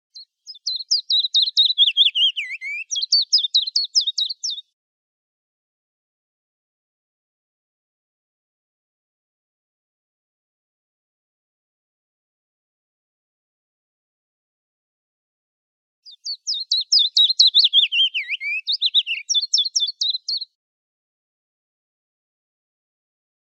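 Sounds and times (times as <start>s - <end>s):
Fitis mixed song: 0.1s - 4.8s, 16.0s - 20.6s.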